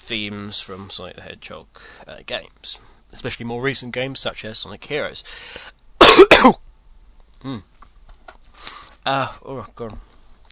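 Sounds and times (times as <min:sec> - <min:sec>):
speech: 0:00.1 - 0:06.7, 0:07.4 - 0:07.7, 0:08.6 - 0:10.1
person coughing harshly: 0:06.0 - 0:06.6.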